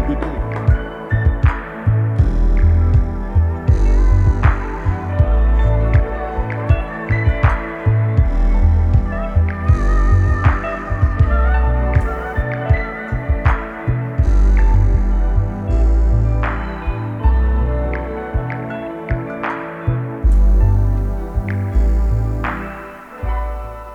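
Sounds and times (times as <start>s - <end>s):
bass-heavy music track with thumping beat and percussive hits: 0.0s - 23.9s.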